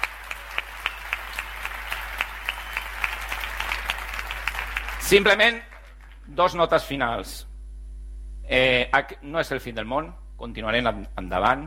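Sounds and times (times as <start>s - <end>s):
audience applauding: 0.0s - 6.3s
speech: 5.1s - 5.7s, 6.3s - 7.5s, 8.5s - 11.6s.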